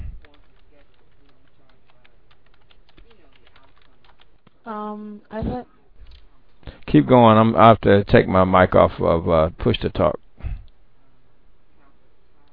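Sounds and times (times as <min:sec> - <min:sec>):
fingers typing rapidly on a computer keyboard: 0:00.2 - 0:04.6
speech: 0:04.7 - 0:05.8, 0:06.9 - 0:10.2.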